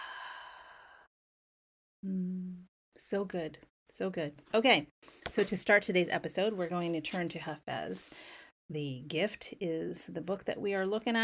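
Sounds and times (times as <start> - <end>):
deep guided exhale of breath: 0.0 - 1.1
speech: 2.0 - 2.4, 3.0 - 11.2.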